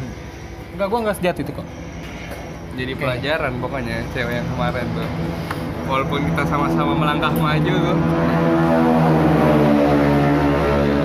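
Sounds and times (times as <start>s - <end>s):
speech: 0.8s - 1.8s, 2.8s - 9.5s
motorcycle passing by outside: 4.5s - 11.0s.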